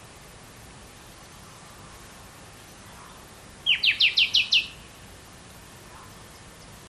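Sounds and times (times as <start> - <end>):
common nightingale Luscinia megarhynchos singing: 1.1 - 5.1, 5.8 - 6.8.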